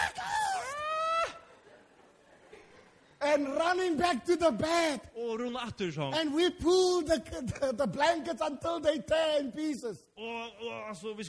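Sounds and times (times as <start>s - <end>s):
voice imitating a frightened scream: 0.0s - 1.4s
speech: 3.4s - 11.2s.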